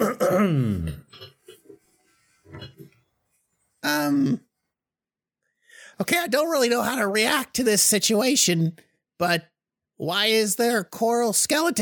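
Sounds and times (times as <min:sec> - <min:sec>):
man clearing his throat: 0:00.0 - 0:01.4
speech: 0:00.4 - 0:01.2, 0:03.8 - 0:04.4, 0:06.0 - 0:11.8.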